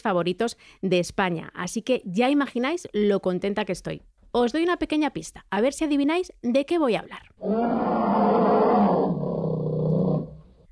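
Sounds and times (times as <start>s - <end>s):
speech: 0.0s - 8.6s
bear roaring: 7.4s - 10.6s.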